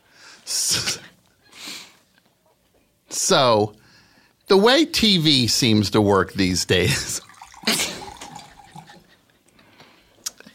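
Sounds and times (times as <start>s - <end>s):
speech: 3.3s - 3.8s, 4.5s - 7.9s
water pouring: 6.9s - 9.1s
water drip: 7.2s - 8.9s.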